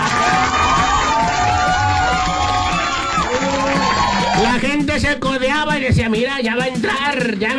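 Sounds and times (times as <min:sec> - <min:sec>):
large stadium crowd shouting, cheering and applauding at a match: 0:00.0 - 0:07.2
speech: 0:05.0 - 0:07.5.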